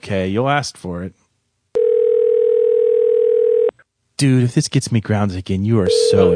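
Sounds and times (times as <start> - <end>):
speech: 0.1 - 1.2, 4.2 - 6.3
loud telephone dial tone: 1.8 - 3.7, 5.9 - 6.3.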